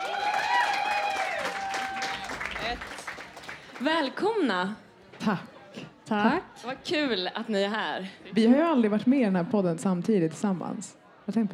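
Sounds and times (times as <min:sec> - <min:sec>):
audience cheering: 0:00.0 - 0:03.9
audience clapping: 0:00.0 - 0:04.2
speech: 0:03.8 - 0:05.5, 0:06.1 - 0:11.5.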